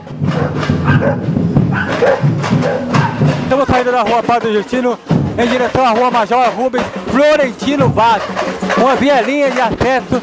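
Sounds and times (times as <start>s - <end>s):
dogs barking at a street carnival: 0.2s - 3.5s
speech: 0.9s - 10.2s.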